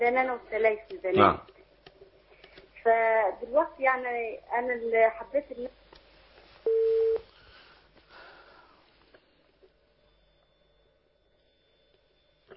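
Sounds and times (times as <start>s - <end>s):
speech: 0.0s - 1.5s, 2.8s - 5.8s
faint continuous telephone tone: 0.0s - 12.5s
telephone tone after a call is cut off: 6.6s - 7.3s.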